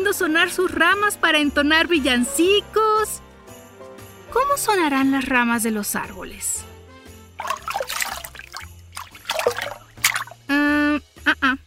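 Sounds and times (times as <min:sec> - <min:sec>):
speech: 0:00.1 - 0:03.2, 0:04.4 - 0:06.7
water trickling and splashing: 0:07.4 - 0:10.5.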